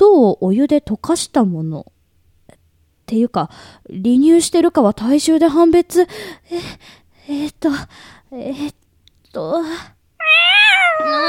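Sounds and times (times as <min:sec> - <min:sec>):
speech: 0:00.2 - 0:01.9, 0:03.1 - 0:11.2
kitten meowing: 0:10.2 - 0:11.2.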